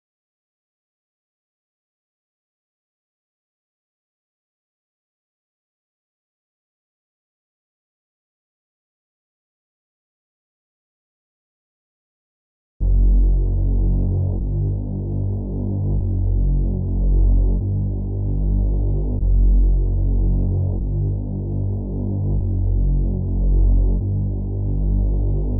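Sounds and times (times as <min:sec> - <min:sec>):
reversed bass melody loop in B minor at 150 BPM: 0:12.8 - 0:25.5.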